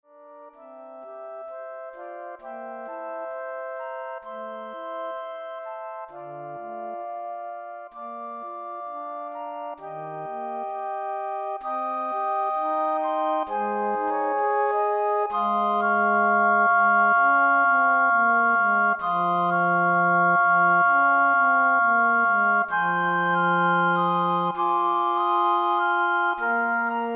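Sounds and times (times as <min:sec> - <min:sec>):
flute ensemble playing: 0:00.4 - 0:27.1.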